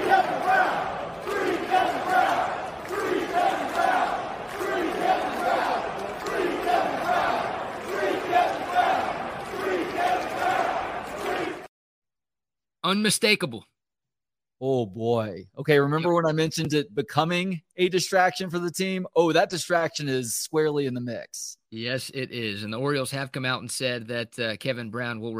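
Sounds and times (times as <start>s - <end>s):
baseball stadium crowd chanting in unison: 0.0s - 11.7s
speech: 12.9s - 13.7s, 14.6s - 25.3s.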